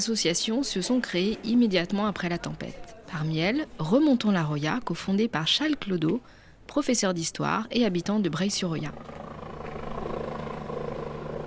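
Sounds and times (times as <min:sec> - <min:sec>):
speech: 0:00.0 - 0:09.4
helicopters flying through a river valley after a storm: 0:08.8 - 0:11.4.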